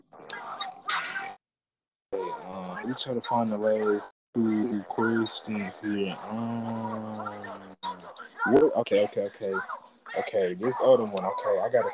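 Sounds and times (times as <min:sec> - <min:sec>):
speech: 0:02.2 - 0:11.9
dog barking: 0:06.9 - 0:11.9.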